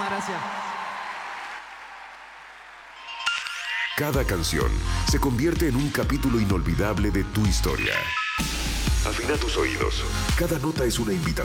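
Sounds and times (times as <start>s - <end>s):
speech: 0.0s - 0.7s, 4.0s - 11.4s
audience applause: 0.0s - 3.1s.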